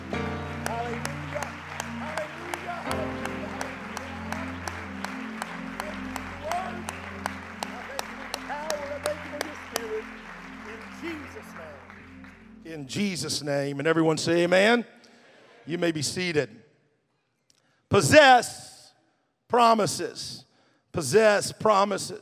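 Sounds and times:
church audience clapping hands in praise: 0.0s - 12.5s
speech: 12.9s - 15.0s, 15.7s - 16.6s, 17.9s - 18.7s, 19.5s - 22.2s.

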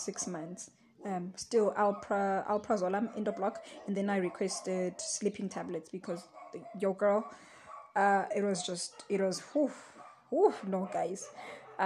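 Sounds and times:
speech: 0.0s - 11.8s
dogs barking at passers-by: 3.0s - 5.1s, 6.2s - 8.0s, 9.9s - 11.8s.

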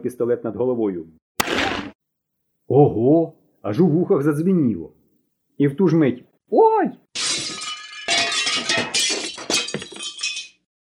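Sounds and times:
speech: 0.0s - 1.8s, 2.7s - 5.0s, 5.6s - 7.0s
broken bowl pieces rattling and clinking as they settle: 7.2s - 10.6s
large earthenware bowl crashing to the floor and shattering in a kitchen: 7.2s - 10.7s.

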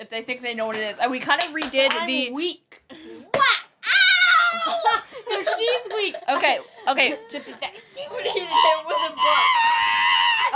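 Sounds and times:
speech: 0.0s - 2.8s, 5.2s - 9.9s
person's high-pitched scream imitating a dolphin's squeal: 3.4s - 4.8s, 8.3s - 10.5s
laughter: 4.5s - 10.5s.

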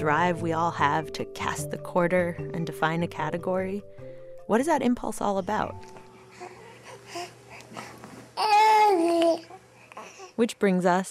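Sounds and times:
speech: 0.0s - 6.5s, 10.4s - 11.0s
four-month-old infant babbling and cooing: 8.4s - 10.4s.

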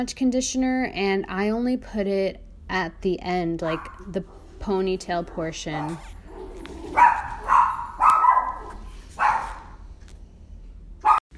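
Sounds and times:
speech: 0.0s - 6.2s
dog barking: 3.7s - 4.5s, 5.4s - 9.8s.

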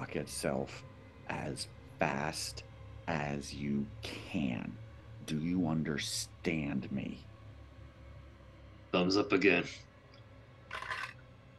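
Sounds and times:
soft low hum: 0.0s - 11.5s
speech: 0.1s - 7.3s, 8.9s - 9.9s
dice rolling across a hard tabletop: 10.7s - 11.2s.

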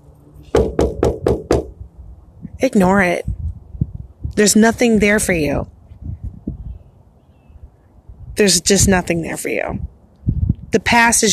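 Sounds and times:
firm knocking on a door: 0.6s - 1.8s
speech: 2.6s - 3.3s, 4.4s - 5.7s, 8.4s - 9.9s, 10.7s - 11.3s.

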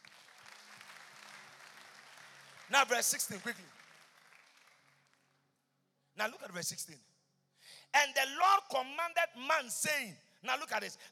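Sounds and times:
crowd applauding: 0.0s - 5.4s
speech: 2.7s - 3.8s, 6.2s - 7.1s, 7.9s - 11.1s.

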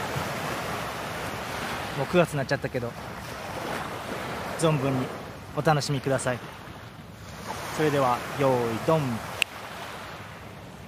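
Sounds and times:
ocean surf of waves on a shore: 0.0s - 10.8s
speech: 2.0s - 3.2s, 4.6s - 6.5s, 7.8s - 9.3s.

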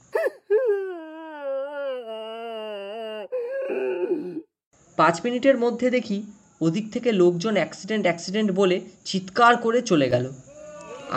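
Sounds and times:
woman wailing loudly while looking up at the sky: 0.1s - 4.5s
speech: 3.7s - 4.4s, 5.0s - 10.4s.

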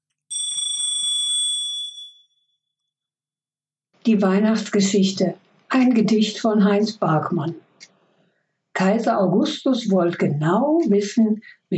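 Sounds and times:
single bright bell ringing: 0.3s - 2.4s
speech: 4.0s - 7.9s, 8.8s - 11.7s.

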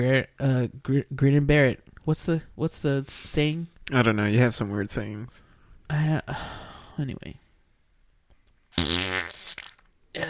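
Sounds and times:
speech: 0.0s - 7.4s, 8.8s - 9.2s
long loud buzzing fart: 8.7s - 9.9s.

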